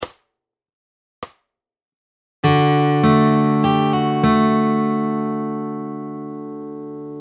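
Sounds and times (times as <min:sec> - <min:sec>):
fingerpicked guitar lick: 0:02.4 - 0:07.2.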